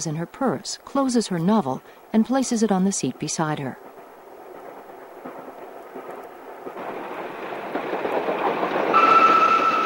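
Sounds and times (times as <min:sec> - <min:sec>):
speech: 0:00.0 - 0:03.9
train rumbling past on the neighbouring track: 0:01.5 - 0:09.8
thin metallic squeal of a passing train: 0:09.0 - 0:09.8.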